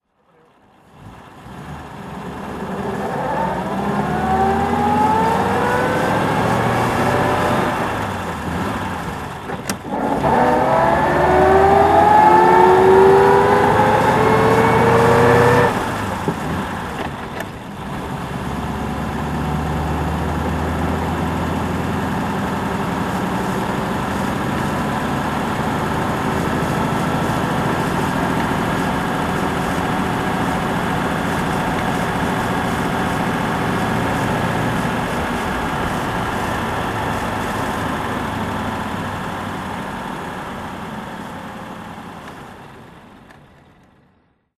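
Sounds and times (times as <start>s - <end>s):
1928 Packard 640 Custom 8 saloon engine driving: 0.2s - 44.5s.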